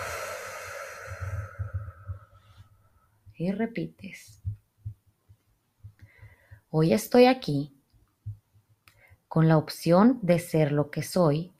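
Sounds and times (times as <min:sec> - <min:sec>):
slow deep breath in and out: 0:00.0 - 0:03.1
speech: 0:03.4 - 0:04.4, 0:06.7 - 0:07.8, 0:09.3 - 0:11.5.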